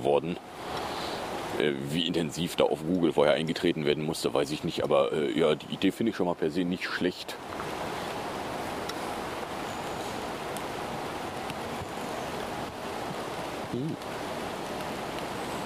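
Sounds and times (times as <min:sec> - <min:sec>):
speech: 0:00.0 - 0:00.9, 0:01.5 - 0:07.6
heavy rain pouring: 0:00.0 - 0:15.6.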